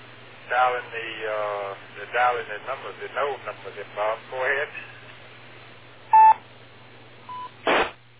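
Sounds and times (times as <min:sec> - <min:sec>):
steady low hum: 0:00.0 - 0:08.1
radio voice talk: 0:00.5 - 0:05.0
DTMF keypad tones dialing an amateur radio node number: 0:06.1 - 0:06.4, 0:07.3 - 0:07.5.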